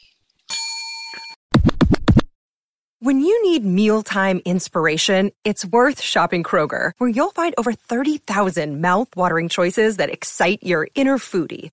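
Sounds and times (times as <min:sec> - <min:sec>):
bell ding: 0:00.5 - 0:01.4
speech: 0:03.0 - 0:11.7.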